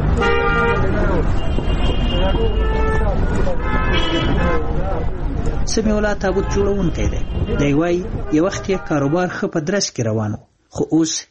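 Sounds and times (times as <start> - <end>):
busy road traffic of passing cars and rickshaws on a street: 0.0 - 9.6
vehicle horn toots and honks: 0.1 - 4.9, 6.2 - 9.4
speech: 5.0 - 11.2.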